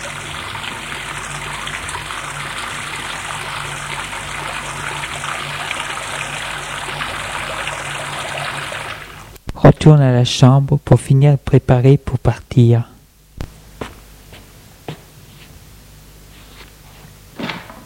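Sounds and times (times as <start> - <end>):
running water as someone washes in a bathroom: 0.0 - 9.4
speech: 9.8 - 12.9.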